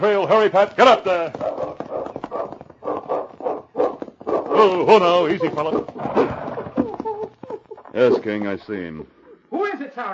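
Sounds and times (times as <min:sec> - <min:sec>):
speech: 0:00.0 - 0:01.5, 0:04.6 - 0:06.4, 0:08.0 - 0:09.2, 0:10.0 - 0:10.1
dog barking around the bend of a trail: 0:01.4 - 0:04.6.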